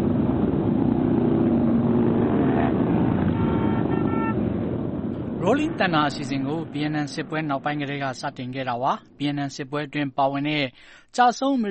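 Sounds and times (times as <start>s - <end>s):
many motorcycles rumbling in a huge rally riding through Washington DC: 0.0s - 9.2s
horn toot: 3.3s - 4.4s
speech: 5.6s - 11.6s.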